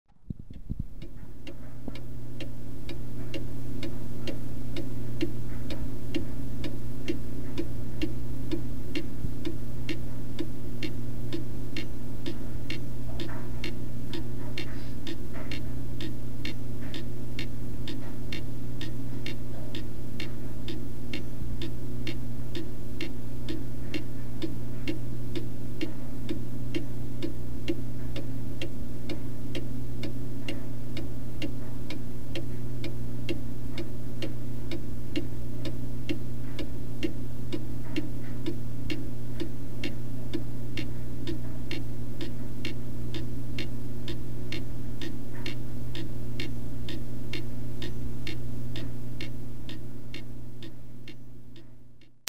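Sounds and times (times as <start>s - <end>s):
clock ticking in a house in Spring, TX: 0.5s - 52.2s.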